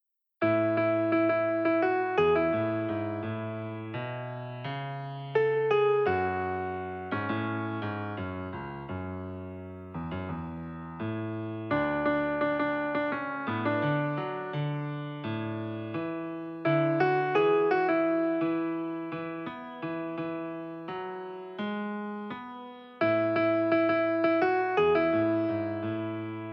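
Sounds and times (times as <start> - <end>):
piano piece: 0.4 - 26.5.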